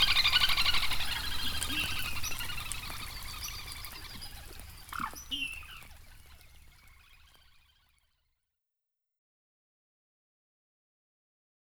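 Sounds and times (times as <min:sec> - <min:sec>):
northern lapwing calls in the rain: 0:00.0 - 0:07.5
steady patter of rain: 0:00.0 - 0:07.7.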